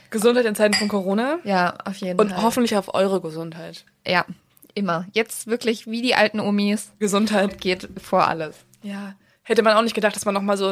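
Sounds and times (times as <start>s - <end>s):
speech: 0.1s - 10.6s
glasses clinking together in a toast: 0.7s - 1.0s.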